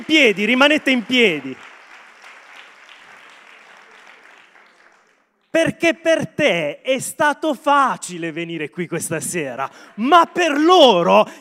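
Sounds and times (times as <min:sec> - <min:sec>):
speech: 0:00.0 - 0:01.7, 0:05.6 - 0:11.3
audience clapping at an evening gathering: 0:00.0 - 0:05.7.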